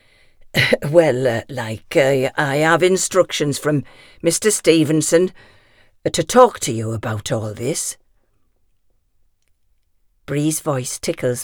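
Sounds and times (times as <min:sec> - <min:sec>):
man's throaty clearing sound: 0:00.6 - 0:00.9
man giving a rough voiced cough: 0:00.6 - 0:01.0
speech: 0:00.7 - 0:08.0, 0:10.3 - 0:11.4.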